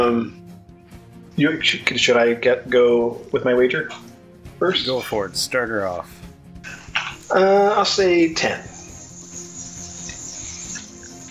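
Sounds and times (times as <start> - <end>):
speech: 0.1 - 0.4, 1.4 - 6.2, 7.3 - 8.7
cicadas buzzing: 6.7 - 11.2.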